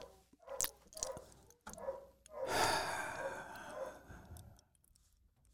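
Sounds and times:
dogs barking: 0:00.0 - 0:04.1.

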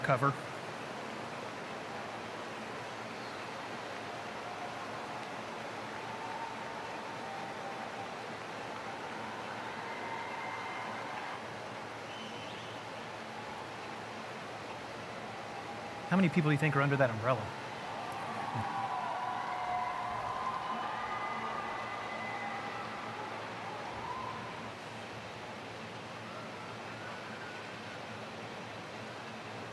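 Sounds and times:
speech: 0:00.0 - 0:00.5, 0:16.1 - 0:17.6
torrential rain pouring during a storm: 0:00.0 - 0:29.7.

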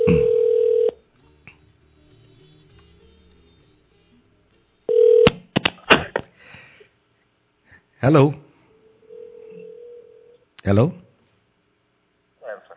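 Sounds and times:
phone ringback tone of an outgoing call: 0:00.0 - 0:01.0, 0:04.9 - 0:05.3, 0:08.8 - 0:10.4
speech: 0:08.0 - 0:08.4, 0:10.6 - 0:11.0.

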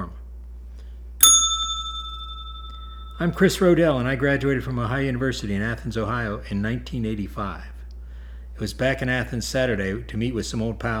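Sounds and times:
bell ding: 0:01.2 - 0:03.4
speech: 0:03.2 - 0:07.7, 0:08.6 - 0:10.9.

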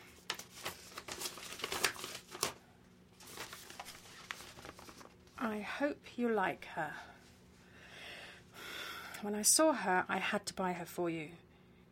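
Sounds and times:
bubble wrap crinkling as a gift is unwrapped: 0:00.0 - 0:02.6, 0:03.2 - 0:05.4
speech: 0:05.4 - 0:07.1, 0:09.2 - 0:11.4.

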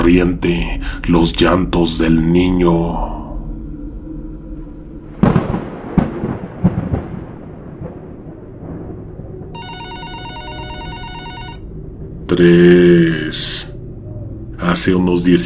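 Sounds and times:
speech: 0:00.0 - 0:03.2, 0:12.3 - 0:13.7, 0:14.6 - 0:15.4
low hum: 0:00.0 - 0:15.4
house telephone bell ringing: 0:09.6 - 0:11.7.

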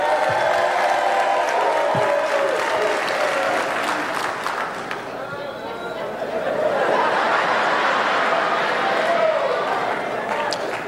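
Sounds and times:
sparse clapping from a small audience: 0:00.0 - 0:05.1, 0:10.3 - 0:10.8
laughter: 0:05.7 - 0:10.3.

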